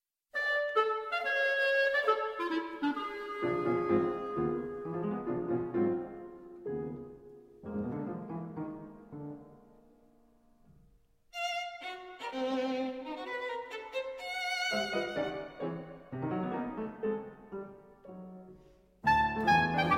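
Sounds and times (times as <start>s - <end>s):
clarinet in a trio with violin and piano: 0.3s - 8.9s, 11.4s - 19.9s
violin in a trio with clarinet and piano: 0.4s - 6.0s, 11.3s - 17.6s, 19.0s - 19.9s
piano in a trio with clarinet and violin: 0.4s - 19.9s.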